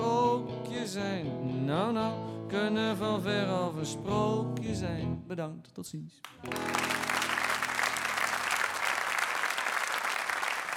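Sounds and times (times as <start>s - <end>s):
speech: 1.0s - 7.1s
large audience applauding a cabaret performer after a live song: 6.3s - 10.7s.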